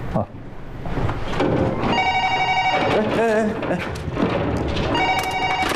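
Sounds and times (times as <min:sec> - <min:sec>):
speech: 0:00.1 - 0:00.4, 0:03.2 - 0:04.9
telephone ringing with bright steady electronic tones: 0:01.9 - 0:03.3, 0:04.8 - 0:05.7.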